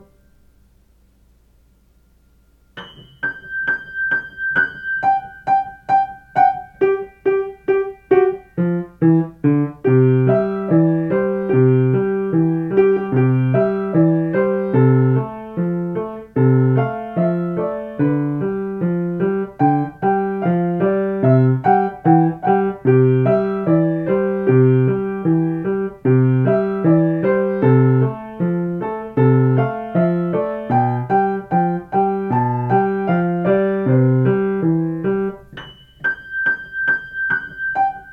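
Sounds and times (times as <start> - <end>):
piano melody: 0.0 - 0.5, 2.5 - 38.1.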